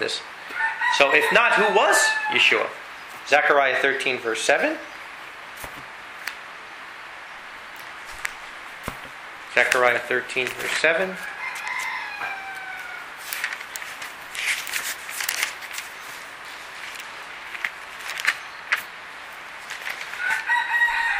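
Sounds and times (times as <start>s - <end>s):
speech: 0.0s - 4.9s, 9.6s - 11.3s
steady hiss: 0.0s - 21.1s
real roosters crowing in a backyard: 0.4s - 2.9s, 10.8s - 13.3s, 20.0s - 21.1s.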